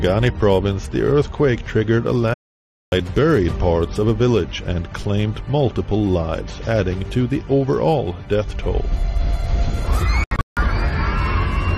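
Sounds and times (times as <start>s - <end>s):
speech: 0.0s - 10.2s
crowd of schoolchildren screaming and crying during an earthquake: 9.8s - 11.7s.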